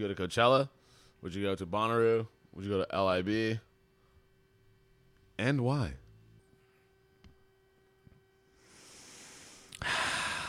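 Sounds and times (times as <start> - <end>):
speech: 0.0 - 3.7, 5.4 - 6.0
heavy breathing while thinking: 8.6 - 10.4.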